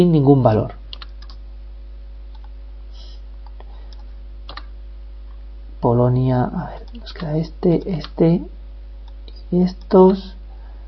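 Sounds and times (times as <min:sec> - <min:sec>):
speech: 0:00.0 - 0:00.8, 0:05.8 - 0:08.6, 0:09.5 - 0:10.4
constant low electrical hum: 0:00.0 - 0:10.8
faint clicks of computer keys pressed to select and delete entries: 0:00.9 - 0:01.4, 0:02.3 - 0:02.6, 0:03.4 - 0:04.7, 0:06.8 - 0:08.2.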